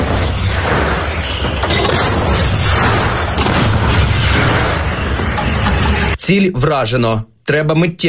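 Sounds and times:
heavy artillery firing: 0.0 - 5.7
speech: 6.3 - 8.0.

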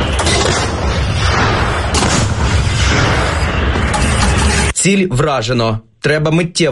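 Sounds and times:
heavy artillery gun firing shots at a target: 0.1 - 4.1
speech: 4.8 - 6.7.

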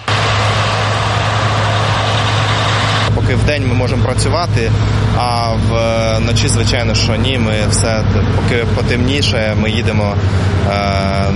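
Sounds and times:
combine harvester working in a field near a border: 0.0 - 11.3
speech: 3.3 - 11.3.

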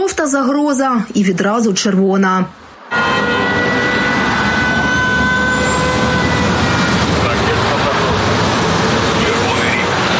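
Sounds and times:
speech: 0.0 - 3.6
rumble of metro station and train noise: 0.0 - 10.1
air raid siren at a metro station: 2.8 - 9.2.

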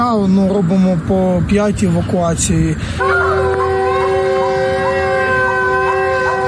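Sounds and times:
speech: 0.0 - 3.5
air raid siren wailing: 2.9 - 6.4.

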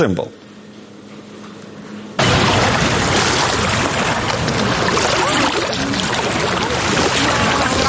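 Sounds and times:
water sloshing and splashing from stand-up paddleboards in Cherkasy: 2.2 - 7.8.

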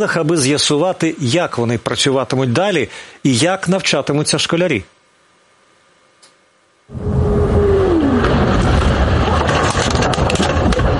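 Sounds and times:
speech: 0.0 - 4.9, 6.9 - 7.2
short falling whine: 6.9 - 9.6
loud roaring rumble recorded by a car dashcam during a strike: 6.9 - 10.9.

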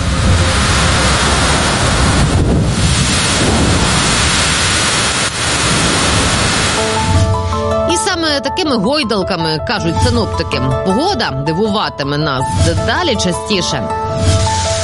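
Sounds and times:
heavy rain pouring down: 0.0 - 7.9, 14.0 - 14.8
deep low rumble of thunder: 0.0 - 8.5, 12.0 - 14.8
speech: 8.6 - 14.6.

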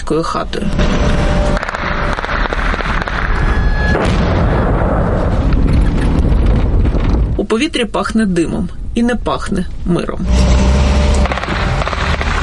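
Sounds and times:
faint tonal whine: 0.0 - 6.7, 7.5 - 12.4
speech: 0.1 - 2.2, 7.6 - 10.8
rapid outdoor gunfire bursts at a drone over a village: 1.5 - 5.1, 11.2 - 12.4.

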